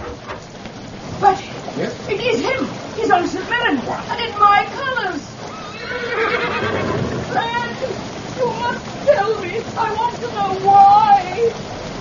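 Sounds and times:
steady hissing background: 0:00.0 - 0:11.9
speech: 0:02.1 - 0:05.3, 0:09.1 - 0:11.7
stallion neighing in a garden: 0:05.4 - 0:07.5.

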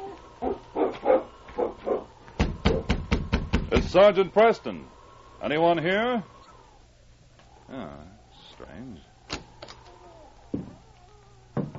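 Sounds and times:
dog giving short whining grunts: 0:00.0 - 0:02.9, 0:09.6 - 0:11.6
dog barking sharply: 0:00.4 - 0:02.1
speech: 0:03.9 - 0:06.3, 0:07.7 - 0:09.1.

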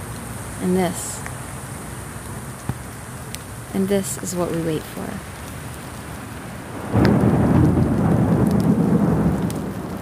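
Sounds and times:
heavy rain pouring in a monsoon thunderstorm: 0:00.0 - 0:10.0
speech: 0:00.6 - 0:01.3, 0:03.8 - 0:05.3
deep rolling thunder rumble in a monsoon thunderstorm: 0:06.6 - 0:10.0.

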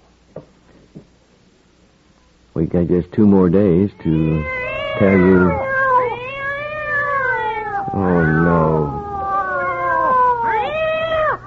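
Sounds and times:
speech: 0:02.6 - 0:05.7, 0:08.0 - 0:08.9
two cats meowing loudly: 0:03.7 - 0:11.4.

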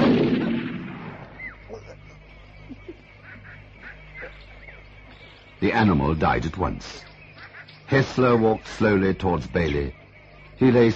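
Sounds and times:
rifle gunshot: 0:00.0 - 0:01.3
faint chirping calls: 0:00.0 - 0:10.9
speech: 0:05.6 - 0:07.1, 0:07.9 - 0:10.0, 0:10.6 - 0:10.9.

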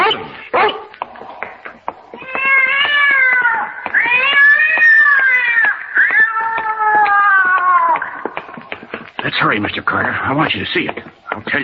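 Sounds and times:
cat yowling: 0:02.2 - 0:08.3
speech: 0:09.5 - 0:11.6.

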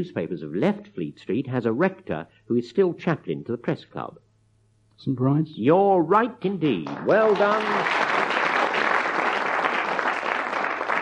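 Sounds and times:
speech: 0:00.0 - 0:04.2, 0:05.0 - 0:08.0
dense audience applause from many hands: 0:06.8 - 0:10.9.

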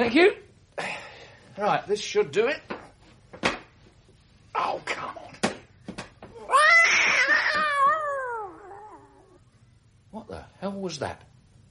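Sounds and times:
speech: 0:00.0 - 0:00.4, 0:01.6 - 0:02.7, 0:10.6 - 0:11.3
cat yowling: 0:06.4 - 0:09.5.

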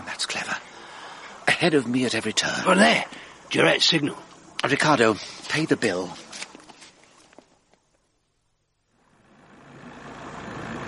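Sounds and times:
speech: 0:01.6 - 0:06.2
car engine idling and rumbling: 0:08.8 - 0:10.8.

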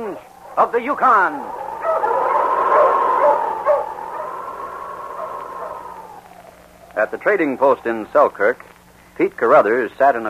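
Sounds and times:
speech: 0:00.2 - 0:01.6, 0:07.0 - 0:10.2
dog barking and whining: 0:00.4 - 0:06.4.

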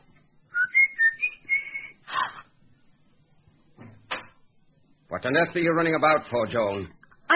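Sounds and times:
person whistling a tune: 0:00.5 - 0:02.0
speech: 0:05.1 - 0:07.3.

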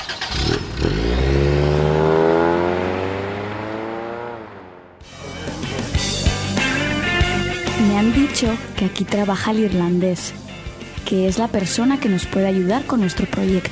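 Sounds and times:
blue car engine revving: 0:00.0 - 0:08.2
speech: 0:08.4 - 0:10.4, 0:11.1 - 0:13.7.

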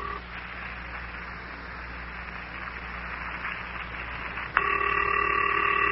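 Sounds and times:
loud electronic telephone ring tone: 0:00.0 - 0:00.2, 0:04.6 - 0:05.8
steady telephone line hiss: 0:00.0 - 0:04.6.

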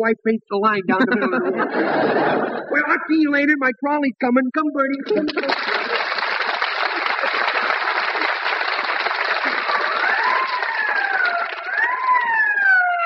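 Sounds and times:
speech: 0:00.0 - 0:05.8
laughter: 0:00.9 - 0:03.1, 0:05.0 - 0:11.9
ambulance siren wailing: 0:09.7 - 0:13.0.

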